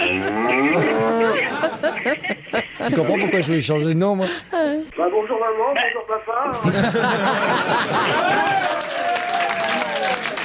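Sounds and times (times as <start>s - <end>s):
cow mooing: 0.0s - 1.0s
laughter: 0.0s - 3.6s, 6.6s - 10.3s
speech: 2.0s - 9.1s.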